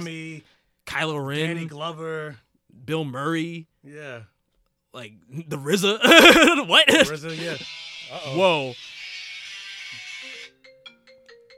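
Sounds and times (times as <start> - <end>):
speech: 0.0 - 4.3, 4.9 - 8.9
laughter: 6.0 - 7.6
loud hissing static: 6.9 - 10.3
electronic phone ringtone playing through a laptop: 10.2 - 11.5.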